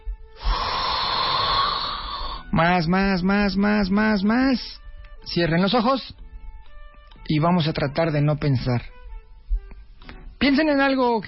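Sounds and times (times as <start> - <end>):
deep abdominal inhalation through pursed lips: 0.4 - 2.5
speech: 2.5 - 6.2, 7.3 - 9.0, 10.4 - 11.2.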